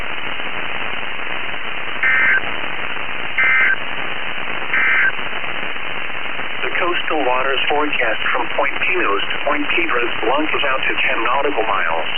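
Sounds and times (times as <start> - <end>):
radio hiss: 0.0 - 12.1
warbling electronic data tones of a weather radio alert signal: 2.0 - 2.5, 3.4 - 3.8, 4.7 - 5.2
speech: 7.6 - 12.1.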